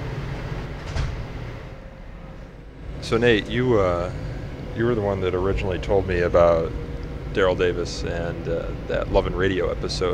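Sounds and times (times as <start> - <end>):
subway train doors sliding shut: 0.0 - 1.8
steady low rumble and hiss of a subway train car: 0.0 - 10.1
speech: 3.1 - 10.1.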